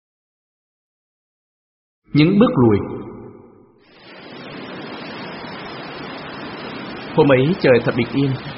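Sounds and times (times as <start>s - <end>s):
speech: 2.1s - 3.0s, 7.2s - 8.5s
ocean waves washing onto a sandy beach: 3.8s - 8.5s.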